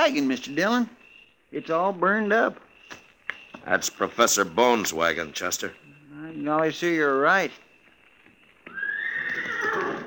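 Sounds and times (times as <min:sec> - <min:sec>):
speech: 0:00.0 - 0:02.7, 0:03.6 - 0:07.6
horse whinnying: 0:08.6 - 0:10.0.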